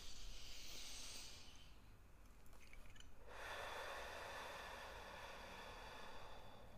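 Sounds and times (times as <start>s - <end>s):
slow deep breathing: 0.0s - 1.9s, 3.2s - 6.7s.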